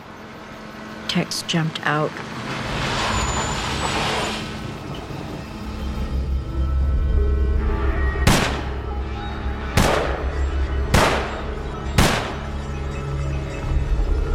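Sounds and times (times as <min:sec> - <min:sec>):
steady low rumble of traffic: 0:00.0 - 0:14.3
speech: 0:01.1 - 0:02.6
sharp gunshots from a gun: 0:08.3 - 0:08.7, 0:09.8 - 0:10.2, 0:10.9 - 0:11.4, 0:12.0 - 0:12.4.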